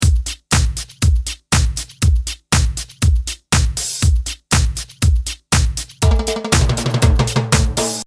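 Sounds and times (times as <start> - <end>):
timbales fill on electronic drum kit: 0.0 - 8.0.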